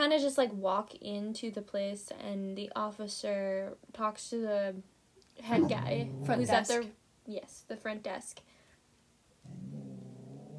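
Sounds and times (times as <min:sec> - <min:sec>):
speech: 0:00.0 - 0:08.5
cat growling: 0:05.5 - 0:06.8, 0:09.4 - 0:10.5.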